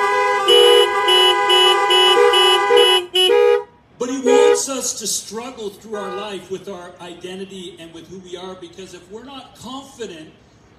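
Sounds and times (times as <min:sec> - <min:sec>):
several car horns honking: 0:00.0 - 0:04.9, 0:05.8 - 0:06.6
speech: 0:04.7 - 0:10.7.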